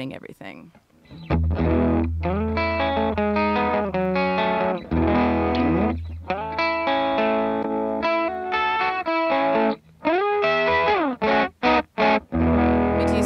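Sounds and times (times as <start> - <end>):
speech: 0.0 - 2.4
distorted electric guitar with humbucker pickups playing chords and riffs: 1.0 - 13.2.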